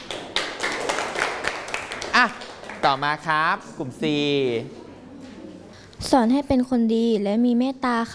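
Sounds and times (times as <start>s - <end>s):
class clapping for classmates who have just presented: 0.0s - 3.3s
speech: 2.2s - 4.8s, 6.0s - 8.1s.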